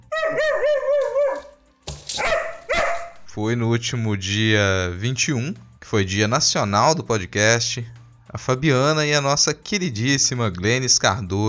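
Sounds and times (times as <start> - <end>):
dog barking: 0.0 - 1.6, 2.2 - 3.3
dog whining: 0.0 - 1.6
speech: 0.3 - 1.2, 3.4 - 11.4.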